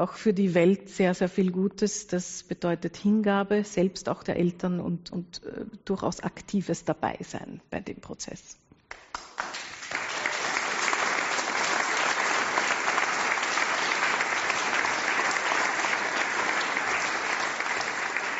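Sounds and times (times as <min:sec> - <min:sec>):
speech: 0:00.0 - 0:08.6
large crowd audience applause: 0:09.1 - 0:18.3.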